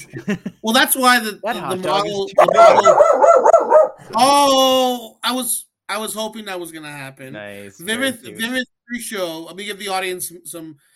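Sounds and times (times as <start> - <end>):
speech: 0.1 - 10.9
dog barking and yipping excitedly: 2.4 - 4.0.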